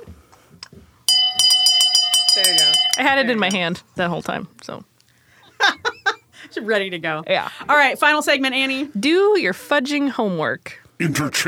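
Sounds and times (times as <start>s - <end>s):
handheld shame bell ringing: 1.1s - 3.6s
speech: 3.0s - 4.9s, 6.6s - 11.4s.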